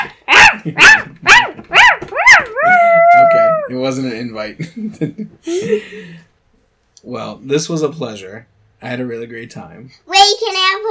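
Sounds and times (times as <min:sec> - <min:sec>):
speech: 0:00.6 - 0:01.1, 0:03.7 - 0:06.3, 0:07.0 - 0:10.9
child imitating a barking puppy: 0:01.9 - 0:03.7.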